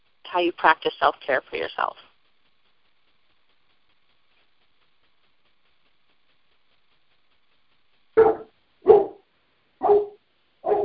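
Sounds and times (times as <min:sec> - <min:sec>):
speech: 0:00.3 - 0:02.1
dog barking: 0:08.2 - 0:09.2, 0:09.8 - 0:10.8.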